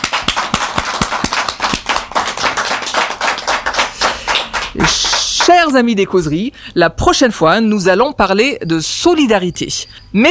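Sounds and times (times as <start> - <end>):
crowd applauding: 0.0 - 5.6
speech: 5.7 - 10.3.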